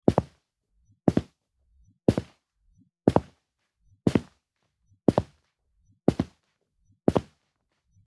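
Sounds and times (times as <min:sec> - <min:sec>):
footsteps on concrete: 0:00.1 - 0:00.4, 0:01.1 - 0:01.3, 0:02.1 - 0:02.4, 0:03.1 - 0:03.4, 0:04.1 - 0:04.4, 0:05.1 - 0:05.4, 0:06.1 - 0:06.4, 0:07.1 - 0:07.4.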